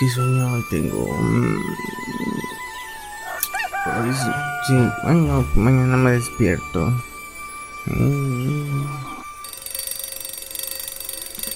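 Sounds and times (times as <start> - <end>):
speech: 0.0 - 2.4, 3.9 - 7.1, 7.8 - 8.9
bright rapid electronic alarm clock ringing: 0.0 - 11.5.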